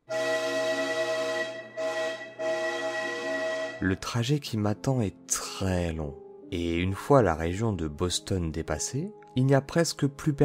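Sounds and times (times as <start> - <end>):
conductor's whistle blasts: 0.0 - 3.8
speech: 3.8 - 10.4.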